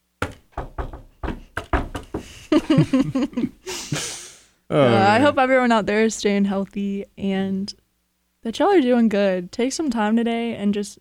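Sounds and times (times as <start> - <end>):
knuckles knocking on wood: 0.2 - 2.3
speech: 2.5 - 4.1, 4.7 - 7.8, 8.4 - 11.0
laughter: 2.5 - 4.2.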